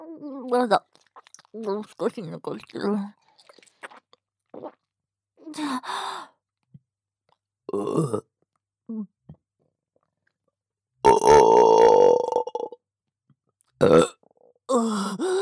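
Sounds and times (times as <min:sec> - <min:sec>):
speech: 0:00.2 - 0:00.9, 0:01.5 - 0:03.2, 0:04.6 - 0:04.8, 0:05.5 - 0:06.3, 0:07.7 - 0:08.3, 0:08.9 - 0:09.1, 0:13.8 - 0:14.1
burping: 0:07.7 - 0:08.2, 0:11.0 - 0:12.8, 0:13.8 - 0:14.9.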